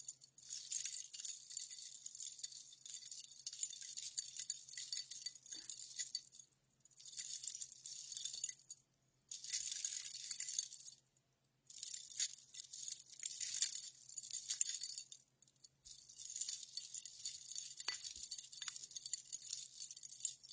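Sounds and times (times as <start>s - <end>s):
crisp jingling and rustling of everyday objects: 0.0s - 11.0s, 11.7s - 20.5s.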